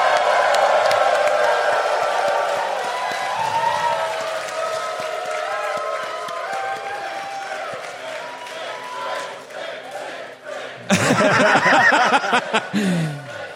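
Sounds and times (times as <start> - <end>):
large crowd roaring: 0.0 - 13.5
laughter: 10.8 - 13.5.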